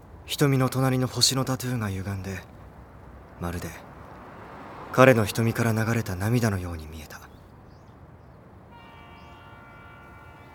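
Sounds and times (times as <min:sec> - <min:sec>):
speech: 0:00.3 - 0:02.6, 0:03.4 - 0:03.9, 0:04.9 - 0:07.3
train whistle at dusk: 0:08.7 - 0:10.5.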